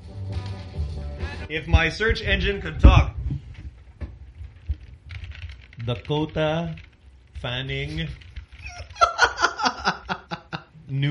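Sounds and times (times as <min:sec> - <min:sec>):
speech: 0:01.5 - 0:03.1, 0:05.9 - 0:06.8, 0:07.4 - 0:08.2
faint typing on a computer keyboard: 0:04.4 - 0:09.4
laughter: 0:08.6 - 0:10.8.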